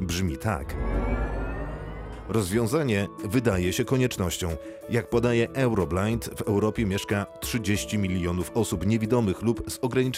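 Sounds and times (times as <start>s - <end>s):
speech: 0.1s - 1.1s, 2.3s - 10.1s
synthesized engine tone of an electric concept car: 0.6s - 2.8s.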